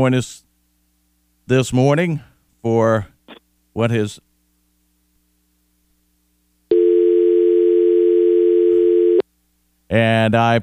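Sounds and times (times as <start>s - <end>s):
speech: 0.0s - 0.4s, 1.5s - 3.1s, 3.8s - 4.3s, 9.9s - 10.6s
telephone dial tone after two callers were disconnected: 6.7s - 9.2s.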